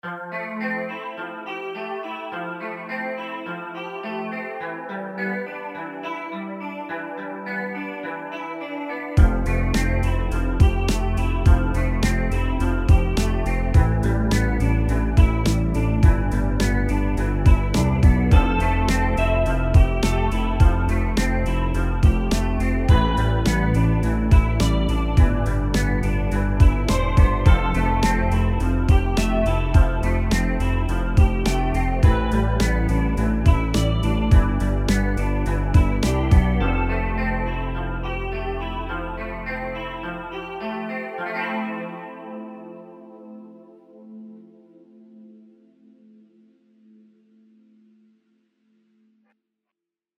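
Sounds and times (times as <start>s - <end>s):
dreamy electric guitar with added bass layer: 0.0s - 47.2s
extra bass layer: 9.2s - 40.5s.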